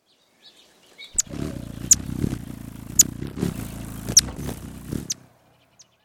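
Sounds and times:
magnificent hummingbird: 1.2 - 5.9.

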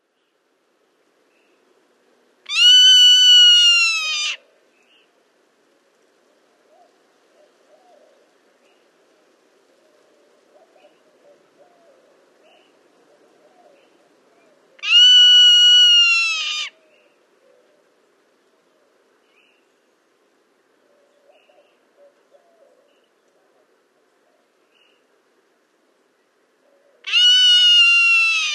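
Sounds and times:
Zone-tailed Hawk call: 2.5 - 4.4, 14.8 - 16.7, 27.1 - 28.5.

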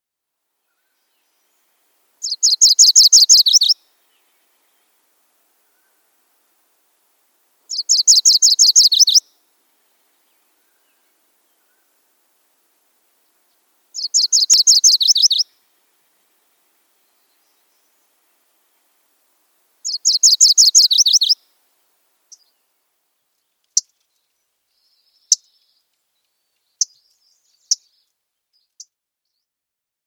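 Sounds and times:
MacGillivray's Warbler: 0.7 - 5.0, 7.7 - 9.5, 13.2 - 15.6, 16.6 - 18.4, 19.8 - 21.4, 22.3 - 29.5.

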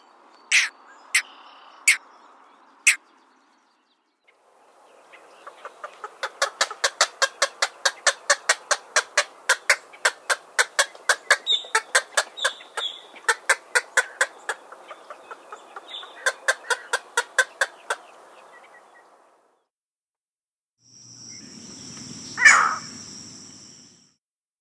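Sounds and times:
green heron harsh squawk: 0.5 - 1.3, 5.7 - 18.0, 22.4 - 22.9
green heron dry clicking kuk calls: 5.4 - 18.0.

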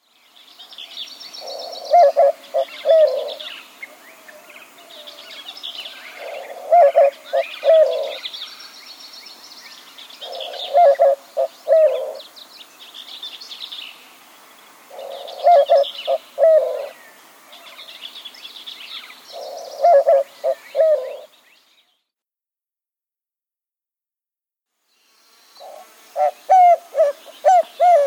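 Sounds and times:
white-winged dove calling: 1.4 - 8.7, 9.8 - 12.4, 14.9 - 17.9, 18.9 - 21.3, 25.6 - 28.0.

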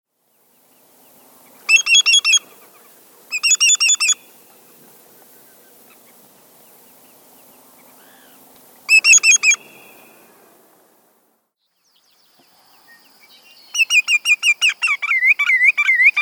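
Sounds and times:
greater yellowlegs calling clear ringing whistled notes: 0.8 - 10.3, 12.9 - 16.1.

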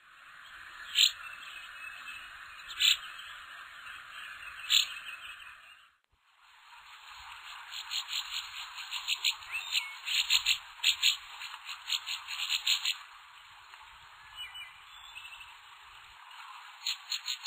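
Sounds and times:
northern rough-winged swallow in Ohio: 0.5 - 5.6, 7.7 - 13.1, 16.8 - 17.4.

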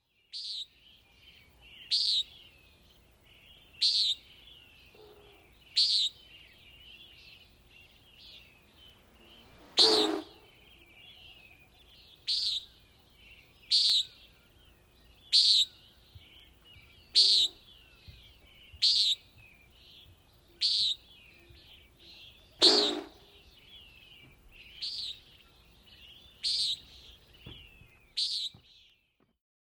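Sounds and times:
Common Nighthawk calling: 3.8 - 4.3, 4.9 - 6.2, 9.2 - 11.4, 12.2 - 12.8, 13.7 - 14.2, 15.3 - 15.8, 17.1 - 17.7, 18.8 - 19.3, 20.5 - 21.1, 22.5 - 23.4, 26.4 - 26.9.

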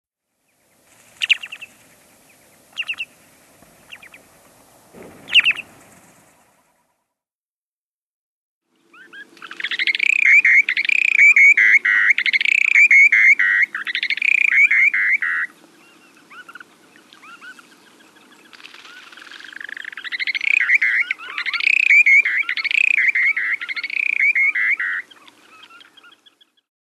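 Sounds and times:
short-billed dowitcher calling: 1.2 - 4.3, 5.2 - 5.8, 8.9 - 17.7, 19.4 - 26.4.

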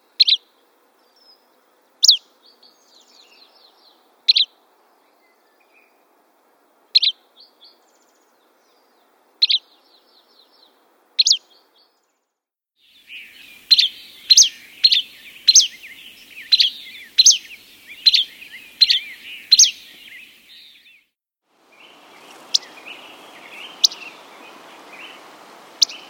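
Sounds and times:
Buff-breasted Flycatcher calling: 2.0 - 2.3, 7.0 - 7.2, 9.4 - 9.7, 11.2 - 11.5, 12.8 - 21.1, 21.7 - 26.0.

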